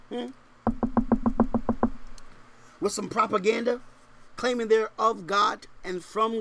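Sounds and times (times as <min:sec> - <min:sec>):
speech: 0:00.1 - 0:00.4, 0:02.8 - 0:06.3
knocking on a door: 0:00.6 - 0:02.0.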